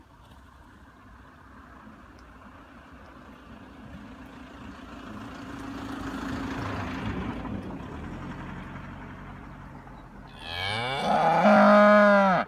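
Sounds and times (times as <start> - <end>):
cow mooing: 10.3 - 12.4.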